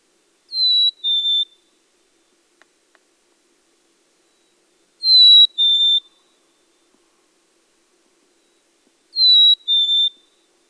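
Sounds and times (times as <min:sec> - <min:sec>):
chickadee whistled song: 0:00.5 - 0:01.6, 0:04.3 - 0:06.3, 0:08.4 - 0:10.5.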